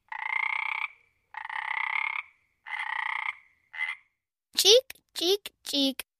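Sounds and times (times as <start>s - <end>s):
frog croaking: 0.0s - 4.2s
speech: 4.6s - 6.1s.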